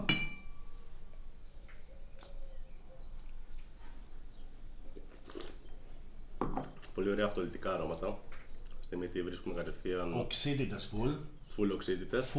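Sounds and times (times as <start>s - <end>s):
wine glasses of Chardonnay Blanc de Blanc clinking in a toast: 0.0s - 0.6s
low hum: 0.0s - 12.3s
speech: 7.0s - 12.3s.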